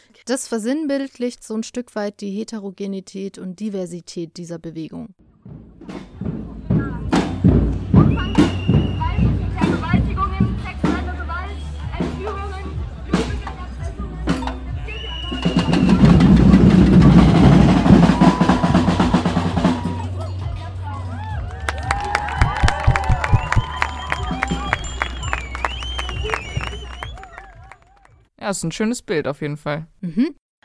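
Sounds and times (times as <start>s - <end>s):
speech: 0.3s - 6.3s, 28.5s - 30.4s
protest crowd drumming on drums: 5.5s - 11.3s, 11.9s - 20.0s, 21.6s - 27.8s
protest crowd cheering: 8.0s - 9.8s, 14.6s - 28.3s
protest crowd chatter: 8.1s - 17.6s, 23.0s - 27.8s.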